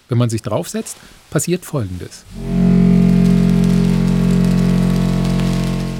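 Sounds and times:
speech: 0.1 - 2.9
crackly rain-like whirring patter from strings on a spinning umbrella: 2.3 - 5.9
loud steady deep droning tone: 2.3 - 5.9.

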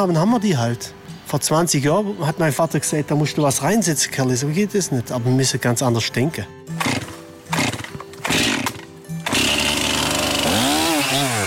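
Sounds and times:
speech: 0.0 - 7.1
chainsaw revving and cutting into a spruce trunk: 6.7 - 11.4.

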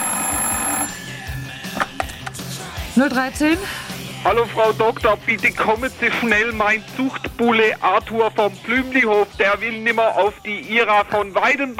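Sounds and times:
telephone ringing in an apartment: 0.0 - 2.2
speech: 3.0 - 11.7.

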